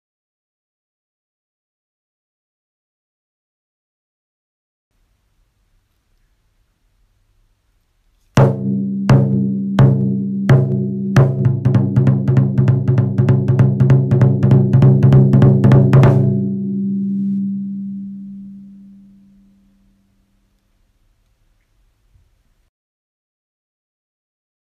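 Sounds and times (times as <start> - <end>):
taiko drums: 8.4 - 16.6.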